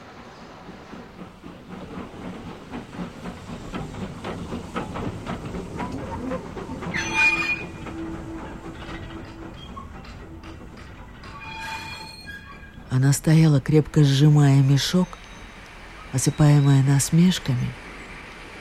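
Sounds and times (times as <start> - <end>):
train wheels clattering over a heavy rumble: 0.0 - 16.1
train metallic squeals: 6.8 - 12.9
speech: 13.0 - 15.2, 16.1 - 17.8.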